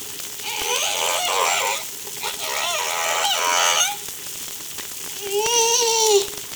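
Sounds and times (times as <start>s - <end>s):
whale song wavering harmonic moans and rapid upsweeps: 0.4s - 4.1s, 5.2s - 6.4s.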